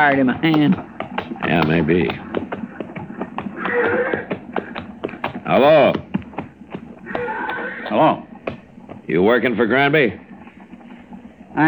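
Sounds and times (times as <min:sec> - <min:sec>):
speech: 0:00.0 - 0:02.3, 0:05.5 - 0:06.1, 0:07.9 - 0:08.3, 0:09.1 - 0:10.2
horses' hooves clip-clopping: 0:00.0 - 0:11.6
horse whinny: 0:03.4 - 0:04.8, 0:06.9 - 0:08.4.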